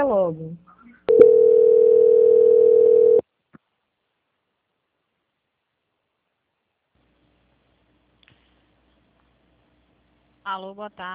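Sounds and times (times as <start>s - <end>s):
speech: 0.0s - 1.3s, 10.5s - 11.1s
steady telephone line tone during call transfer: 1.1s - 3.2s.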